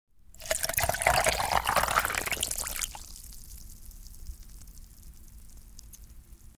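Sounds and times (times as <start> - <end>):
liquid pouring over ice into a glass until it fills up: 0.4 - 3.5.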